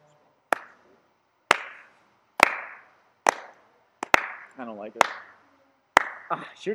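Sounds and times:
stadium crowd slow clapping in unison for a jumper: 0:00.5 - 0:00.9, 0:01.5 - 0:05.4, 0:06.0 - 0:06.4
speech: 0:04.6 - 0:05.3, 0:06.3 - 0:06.7.

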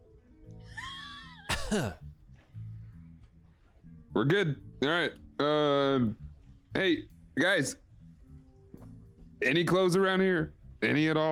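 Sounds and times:
sharp rough cough: 0:01.5 - 0:02.0
short strained vocal hum: 0:01.5 - 0:02.0
speech: 0:01.7 - 0:02.1, 0:04.2 - 0:06.2, 0:06.8 - 0:07.8, 0:09.4 - 0:11.3.

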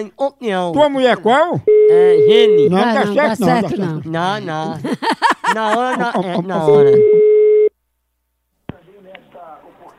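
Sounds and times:
speech: 0:00.0 - 0:07.2
telephone line tone while placing a call: 0:01.7 - 0:02.8, 0:06.7 - 0:07.7
laughter: 0:02.3 - 0:07.2.

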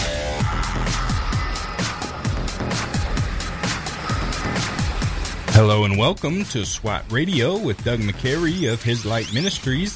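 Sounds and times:
loud rumbling roar with crackling pulses and popping bursts: 0:00.0 - 0:06.6
speech: 0:05.6 - 0:09.9.

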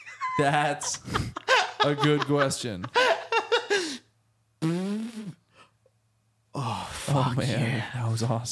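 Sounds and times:
laughter: 0:00.0 - 0:04.0
speech: 0:00.4 - 0:03.0, 0:07.1 - 0:08.5
fart: 0:04.6 - 0:05.4.

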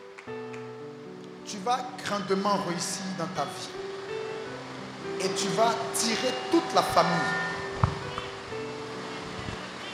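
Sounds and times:
steady rain falling: 0:01.2 - 0:09.9
speech: 0:01.5 - 0:03.8, 0:05.2 - 0:07.5
soft knocks: 0:07.8 - 0:08.3.

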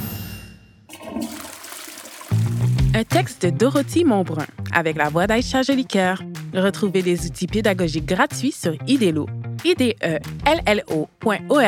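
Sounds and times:
toilet flushing: 0:00.9 - 0:03.2
speech: 0:03.0 - 0:11.6.

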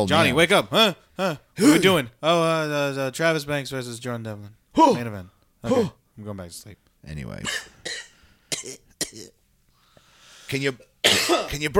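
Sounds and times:
speech: 0:00.0 - 0:08.0, 0:08.6 - 0:09.4, 0:10.5 - 0:11.7
person coughing: 0:05.7 - 0:06.0, 0:07.4 - 0:09.4, 0:11.0 - 0:11.6.

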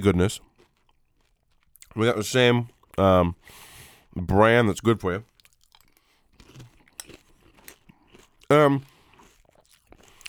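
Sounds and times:
speech: 0:00.0 - 0:00.5, 0:02.0 - 0:05.3, 0:08.5 - 0:08.9
chewing crunchy bran cereal with almond milk: 0:00.1 - 0:04.2, 0:04.8 - 0:10.2.

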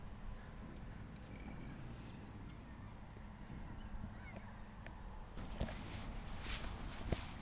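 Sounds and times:
faint farm animal calls: 0:00.2 - 0:05.3
footsteps crunching through the center of a farm: 0:05.4 - 0:07.4.

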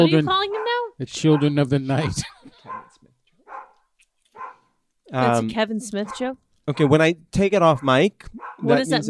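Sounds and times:
speech: 0:00.0 - 0:02.4, 0:05.1 - 0:09.0
dogs barking: 0:00.4 - 0:04.7, 0:06.0 - 0:07.0, 0:07.7 - 0:09.0.

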